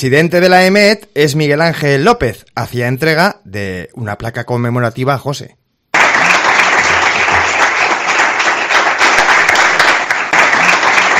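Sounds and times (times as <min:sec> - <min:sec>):
speech: 0:00.0 - 0:05.6
applause from a roomful of people at an award ceremony: 0:05.9 - 0:11.1.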